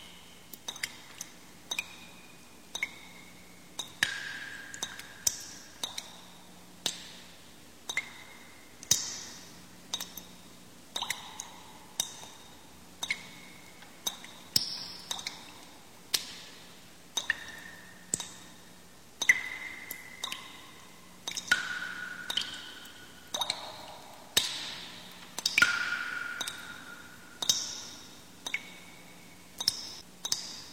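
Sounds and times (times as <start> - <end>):
water dripping from stalactites into a cave: 0.0 - 30.7.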